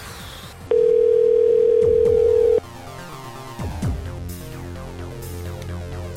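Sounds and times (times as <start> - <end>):
ringback tone from an outgoing phone call: 0.7 - 2.6.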